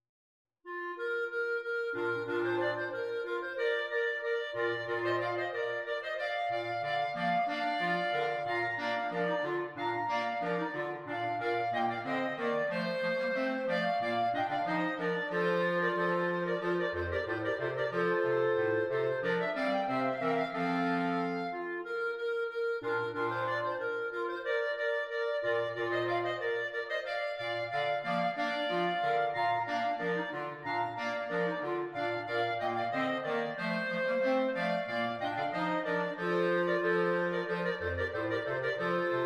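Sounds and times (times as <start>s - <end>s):
clarinet quartet playing: 0.7s - 39.2s.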